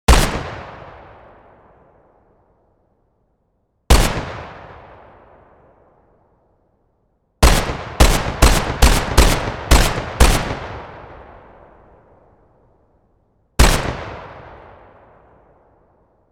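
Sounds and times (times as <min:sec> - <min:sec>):
gun firing single shots and consecutive bursts: 0:00.1 - 0:01.5, 0:03.9 - 0:05.2, 0:07.4 - 0:11.6, 0:13.6 - 0:15.0.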